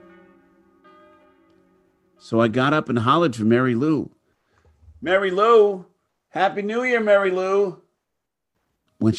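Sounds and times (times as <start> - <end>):
bells ringing in the new year: 0.0 - 3.5
speech: 2.2 - 4.2, 5.0 - 7.8, 9.0 - 9.1.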